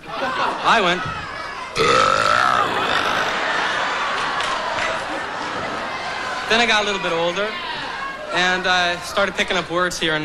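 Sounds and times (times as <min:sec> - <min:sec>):
laughter: 0:00.0 - 0:07.2
speech: 0:00.6 - 0:01.2, 0:01.8 - 0:02.3, 0:06.5 - 0:07.6, 0:08.3 - 0:10.2
man forcing out a deliberate tonal burp: 0:01.8 - 0:03.6.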